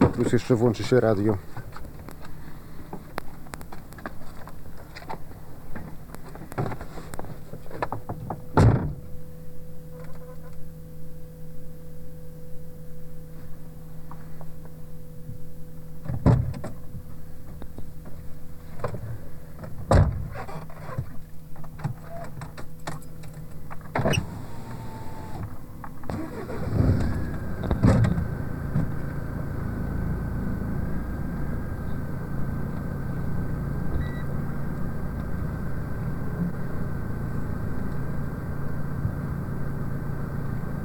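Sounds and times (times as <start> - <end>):
steady low hum inside a car: 0.0 - 40.8
speech: 0.2 - 1.6
car door closing: 23.9 - 25.5, 26.1 - 29.0.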